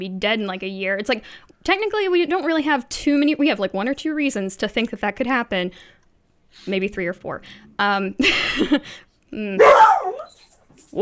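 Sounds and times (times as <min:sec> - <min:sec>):
speech: 0:00.0 - 0:10.0
dog barking at the door: 0:09.6 - 0:10.3.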